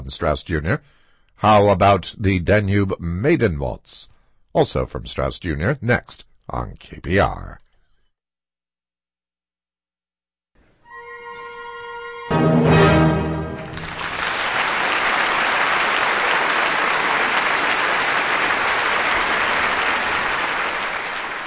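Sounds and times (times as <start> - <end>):
speech: 0.1 - 7.6
final orchestral chord: 10.9 - 13.8
large concert audience applause: 13.6 - 21.4.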